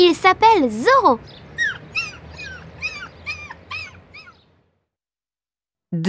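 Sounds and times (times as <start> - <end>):
speech: 0.0 - 1.4
low hum: 0.0 - 4.6
dog yelping and whimpering: 1.5 - 4.5.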